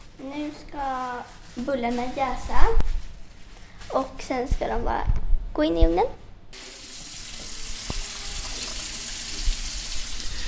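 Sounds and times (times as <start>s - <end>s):
speech: 0.2s - 2.9s, 3.9s - 6.8s
running tap water as hands are washed under the faucet: 6.6s - 10.4s.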